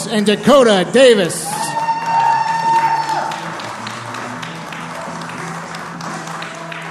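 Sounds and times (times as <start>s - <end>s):
speech: 0.1s - 1.4s
audience clapping and cheering: 1.6s - 6.8s.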